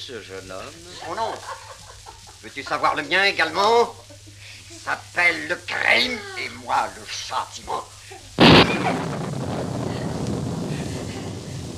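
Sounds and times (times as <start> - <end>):
speech: 0.0 - 1.8, 2.4 - 4.2, 4.8 - 7.9, 8.7 - 9.2
laughter: 0.5 - 7.0, 7.6 - 9.1
rushing wind-like storm roar: 8.4 - 11.7
thunder crack from a storm over a town at night: 8.4 - 11.7.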